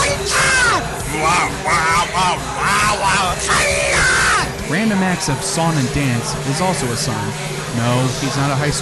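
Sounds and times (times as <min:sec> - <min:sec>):
drunk person bellowing erratic shouts: 0:00.0 - 0:04.6
faint murmur of crowd noise: 0:00.0 - 0:08.8
speech: 0:05.0 - 0:08.8.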